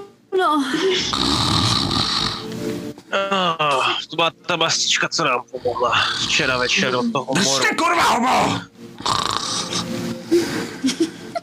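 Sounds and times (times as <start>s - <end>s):
speech: 0.5s - 1.7s, 3.1s - 9.3s
person imitating loud rasping snoring: 0.9s - 2.5s, 8.5s - 10.0s
laughter: 10.3s - 11.4s.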